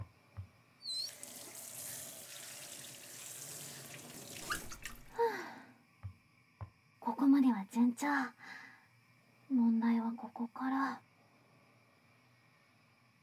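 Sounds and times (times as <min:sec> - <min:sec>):
running tap water rinsing a horse mackerel under the faucet: 0:00.4 - 0:05.2
brief splashes and clinks: 0:03.7 - 0:05.2
speech: 0:08.0 - 0:08.6, 0:09.5 - 0:11.0.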